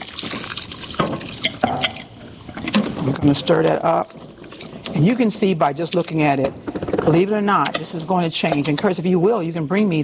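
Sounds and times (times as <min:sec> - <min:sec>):
water poured into a cooking pot of plant-based curry: 0:00.0 - 0:05.0
speech: 0:03.0 - 0:04.2, 0:04.9 - 0:10.0.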